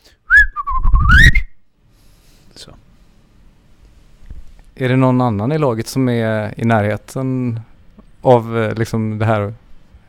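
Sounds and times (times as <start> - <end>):
person whistling an imitation of chaffinch song: 0.3 - 1.6
speech: 2.6 - 2.9, 4.8 - 9.6.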